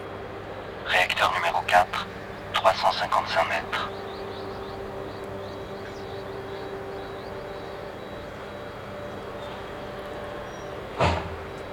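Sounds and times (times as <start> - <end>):
speech: 0.9 - 4.1
truck hiss or clunk as it stops: 11.0 - 11.4.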